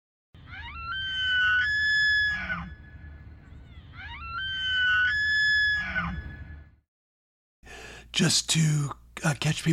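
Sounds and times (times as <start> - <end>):
elk bugling in the Smokies: 0.4 - 6.8
speech: 8.2 - 9.7.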